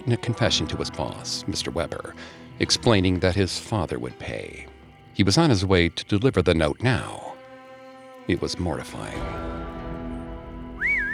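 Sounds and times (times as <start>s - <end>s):
speech: 0.1s - 7.3s, 8.3s - 9.6s
sharp piercing whistle: 10.7s - 11.1s.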